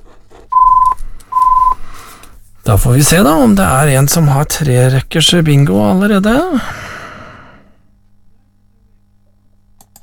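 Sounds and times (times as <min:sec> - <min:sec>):
telephone ringing over a line: 0:00.5 - 0:01.8
speech: 0:02.7 - 0:06.8.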